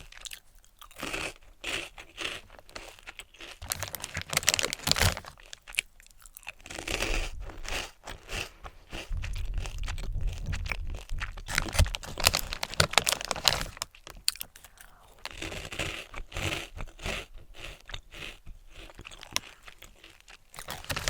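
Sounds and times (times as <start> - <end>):
crisp crunches and chewing of snacks: 0.0 - 21.0
snack packaging crinkling: 3.6 - 5.6, 11.4 - 14.6, 20.6 - 21.0.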